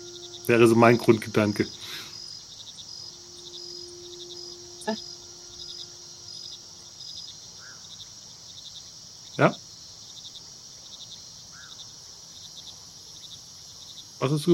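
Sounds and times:
faint call: 0.0 - 8.3
crickets chirping in a nighttime forest: 0.0 - 14.5
soft constant insect drone: 0.0 - 14.5
speech: 0.5 - 2.0, 4.9 - 5.1, 9.4 - 9.6, 14.2 - 14.5.

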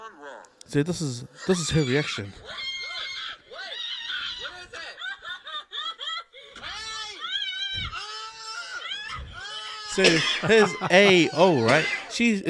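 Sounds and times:
speech: 0.7 - 2.7, 10.0 - 12.4
laughter: 1.4 - 12.4
woman screaming in terror: 1.6 - 10.0.

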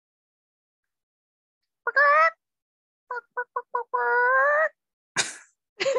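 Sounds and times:
person imitating a chicken: 1.9 - 2.4, 3.1 - 4.8.

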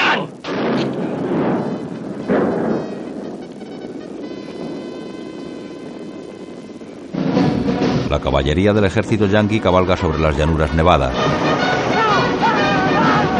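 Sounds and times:
rifle shots with rumble: 0.4 - 8.1
steady tonal background: 0.5 - 13.3
speech: 8.2 - 11.6.

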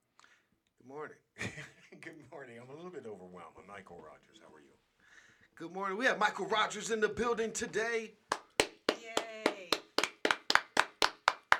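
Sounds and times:
speech: 0.9 - 4.9, 5.6 - 8.3
hand claps: 8.3 - 11.5.

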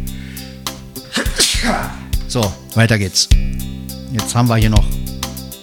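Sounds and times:
person sneezing: 0.2 - 2.3
speech: 1.6 - 5.1.

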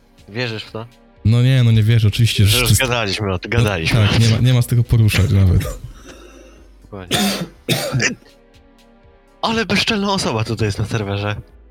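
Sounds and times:
speech: 0.3 - 5.9, 6.9 - 8.4, 9.4 - 11.6
person coughing: 5.1 - 8.3.

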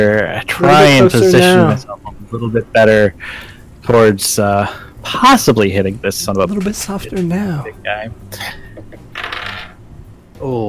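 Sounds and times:
speech: 0.0 - 8.6, 10.4 - 10.6
dice rolling on a table: 9.1 - 9.8.

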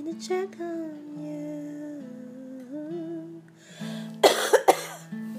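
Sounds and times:
speech: 0.2 - 0.8
person coughing: 4.2 - 5.1.

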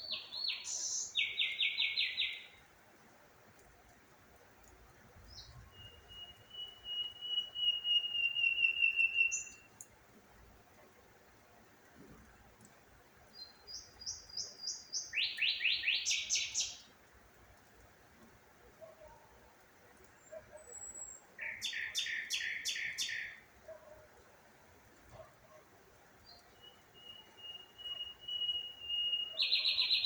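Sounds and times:
birds singing: 0.0 - 2.7, 5.2 - 9.8, 13.3 - 16.9, 20.1 - 23.5, 26.2 - 30.0.

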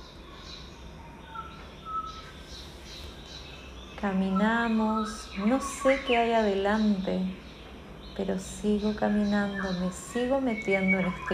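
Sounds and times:
bird chirps and calls in a fir and beech forest: 0.0 - 11.3
soft hum: 0.0 - 11.3
speech: 4.0 - 7.4, 8.2 - 11.3.

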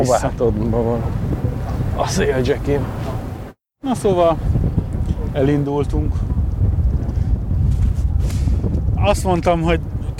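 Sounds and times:
speech: 0.0 - 3.0, 3.8 - 4.6, 5.3 - 6.3, 9.0 - 10.1
strong wind blowing against the microphone: 0.0 - 10.1.

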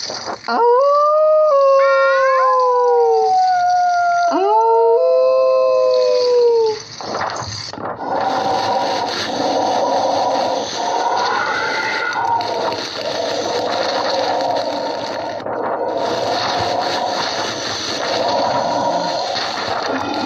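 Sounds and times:
several wolves howling in chorus: 0.6 - 6.7, 8.1 - 20.2
rough hissing noise: 5.8 - 20.2.

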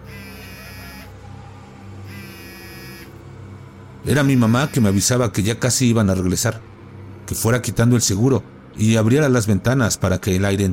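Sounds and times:
mobile phone vibrating: 0.0 - 1.2, 2.0 - 3.2, 4.3 - 5.1
steady low hum in the room: 0.0 - 10.7
speech: 4.0 - 10.7.

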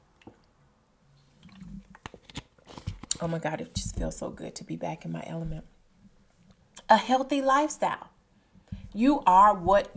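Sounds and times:
person drinking water: 1.2 - 3.2
soft gulps of water: 1.3 - 2.0
speech: 3.2 - 5.7, 6.9 - 8.0, 9.0 - 9.9.

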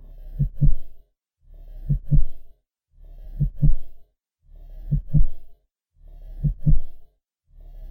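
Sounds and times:
deep heartbeat thumping: 0.3 - 1.0, 1.8 - 2.5, 3.4 - 4.0, 4.9 - 5.5, 6.4 - 7.0.

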